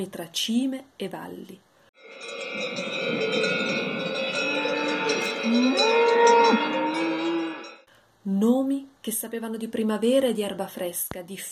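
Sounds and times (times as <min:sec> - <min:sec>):
speech: 0:00.0 - 0:01.7, 0:05.5 - 0:06.6, 0:08.2 - 0:11.5
cows mooing: 0:02.0 - 0:07.8.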